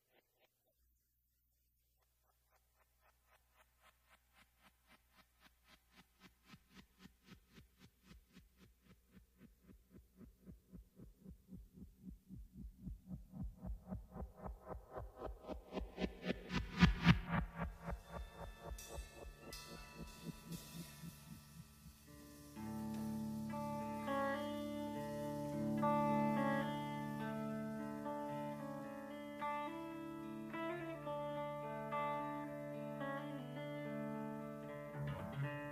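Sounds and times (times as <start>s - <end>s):
synthesized helicopter rotor blades whirring on a soundtrack: 2.3s - 21.8s
sustained musical tones from a song: 13.7s - 35.5s.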